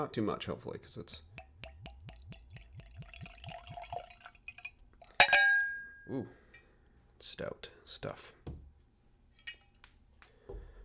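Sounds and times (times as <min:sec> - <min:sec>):
speech: 0:00.0 - 0:01.3, 0:06.1 - 0:06.4, 0:07.2 - 0:08.4
rum glugging from a newly opened bottle into a glass: 0:01.4 - 0:05.9
sharp clink: 0:03.2 - 0:06.7, 0:09.4 - 0:09.8.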